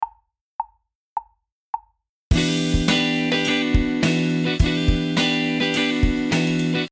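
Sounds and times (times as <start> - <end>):
minor seventh chords: 2.3 - 6.9.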